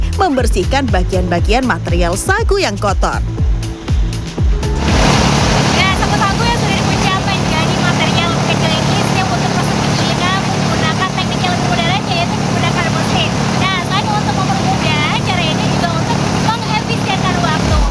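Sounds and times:
speech: 0.2s - 3.6s
sago grinding machine crushing palm trunk pieces: 4.6s - 17.8s.

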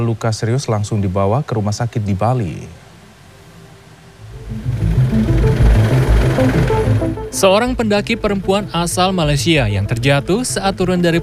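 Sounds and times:
speech: 0.0s - 2.8s, 7.4s - 11.2s
search-and-rescue helicopter roaring with heavy rotor thudding: 4.3s - 7.4s.

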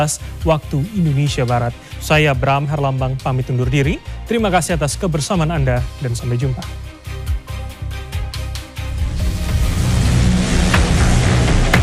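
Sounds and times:
speech: 0.0s - 6.9s
illegal street-racing car engines revving on a public city road in Palangkaraya, Indonesia: 9.1s - 11.8s.

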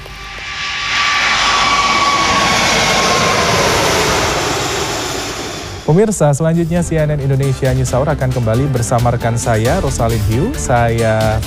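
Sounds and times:
Emirates Airbus A380 jet airliner arriving: 0.0s - 8.5s
speech: 5.9s - 11.4s.

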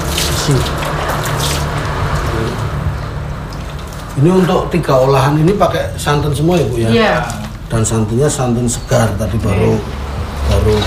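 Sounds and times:
tap water running as hands are washed in a traditional kitchen: 0.0s - 2.8s
speech: 0.5s - 0.8s, 4.2s - 10.0s, 10.6s - 10.8s.

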